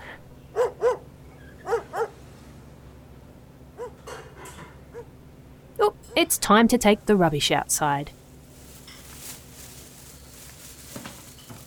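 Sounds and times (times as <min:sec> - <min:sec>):
low hum: 0:00.0 - 0:11.6
dog barking: 0:00.6 - 0:02.2, 0:03.8 - 0:04.1
speech: 0:06.2 - 0:08.2.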